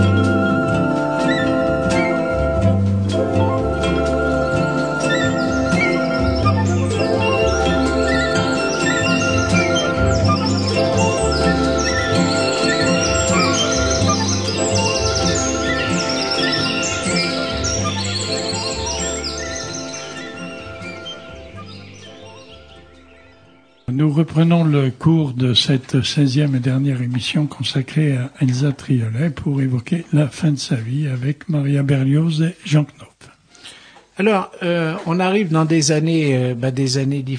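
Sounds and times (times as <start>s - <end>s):
nightingale singing: 0.0s - 25.2s
dense steady background of sustained tones: 0.0s - 25.6s
speech: 24.4s - 33.1s, 34.2s - 37.3s.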